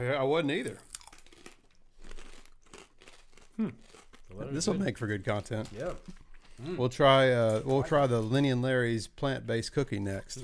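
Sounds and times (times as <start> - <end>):
speech: 0.0 - 0.9, 3.6 - 10.4
person chewing pork rinds: 0.7 - 4.4.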